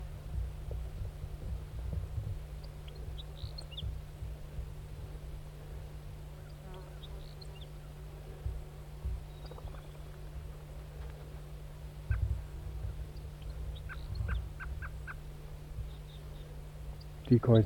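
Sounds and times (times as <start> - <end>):
steady low mechanical hum: 0.0 - 17.6
lone male wild turkey gobbling: 13.7 - 15.2
speech: 17.3 - 17.6.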